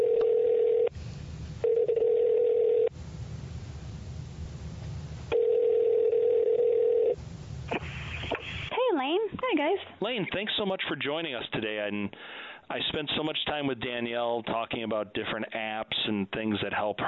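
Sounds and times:
telephone line tone during dialing: 0.0 - 0.9, 1.6 - 2.9, 5.3 - 7.2
hissy telephone line noise: 0.9 - 1.9, 2.9 - 5.4, 7.2 - 8.8
speech: 10.1 - 17.0.

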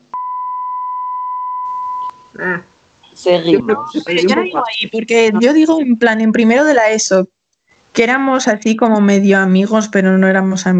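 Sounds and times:
censor bleep tone: 0.1 - 2.4
faint noise: 1.6 - 10.7
speech: 2.3 - 7.4, 8.0 - 10.7
laughter: 3.4 - 5.6.

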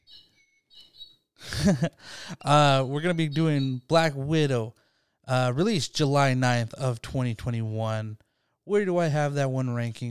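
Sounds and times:
small bird chirping: 0.0 - 1.4, 2.4 - 4.0
speech: 1.6 - 10.0.

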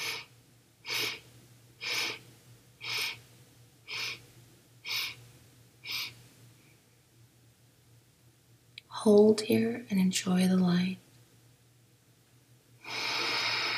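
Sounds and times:
deep inhaling breaths during a guided breathing exercise: 0.0 - 0.3, 0.9 - 2.2, 2.8 - 3.2, 12.8 - 13.7
faint low hum: 0.0 - 13.7
speech: 9.0 - 11.0.

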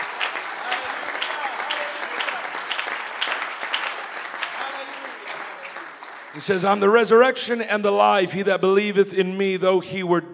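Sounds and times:
large church audience clapping during a sermon: 0.0 - 7.3
speech: 6.4 - 10.3.

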